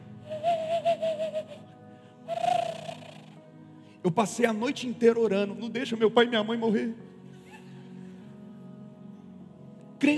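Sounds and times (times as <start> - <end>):
owl hooting: 0.2 - 1.7, 2.3 - 3.4
speech: 4.0 - 7.1, 10.0 - 10.1.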